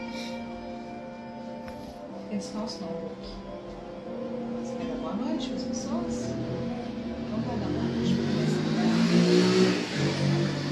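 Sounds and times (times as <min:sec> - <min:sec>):
speech: 0:02.3 - 0:03.6, 0:05.1 - 0:06.8, 0:07.4 - 0:10.3
motorcycle engine revving: 0:05.6 - 0:10.7.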